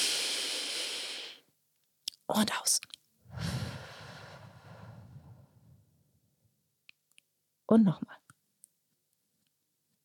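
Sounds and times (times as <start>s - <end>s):
deep belly-breathing inhale during a group breathing exercise: 0.0s - 1.4s, 3.3s - 5.8s
speech: 2.3s - 3.0s, 7.7s - 8.2s.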